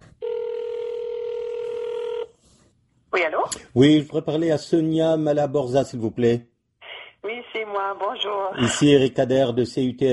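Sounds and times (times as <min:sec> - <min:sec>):
telephone ringing tone on the line as a call is placed to New Brunswick: 0:00.2 - 0:02.4
speech: 0:03.2 - 0:06.5, 0:07.9 - 0:10.1.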